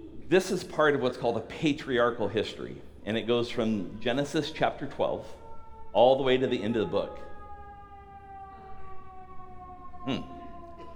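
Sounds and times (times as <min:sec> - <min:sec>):
speech: 0:00.3 - 0:05.4, 0:06.0 - 0:07.3
fire engine siren wailing: 0:02.2 - 0:10.9.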